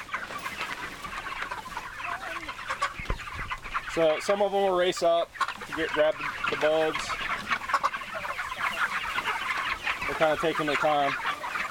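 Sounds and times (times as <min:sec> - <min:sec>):
flock of chickens clucking and murmuring outdoors: 0:00.0 - 0:11.6
speech: 0:04.0 - 0:07.2, 0:10.2 - 0:11.3.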